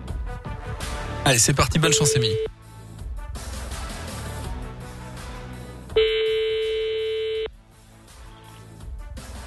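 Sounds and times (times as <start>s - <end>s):
continuous music: 0.0s - 9.4s
speech: 1.2s - 2.6s
telephone ring tone of a call to a hotel: 1.9s - 2.5s, 6.0s - 7.5s.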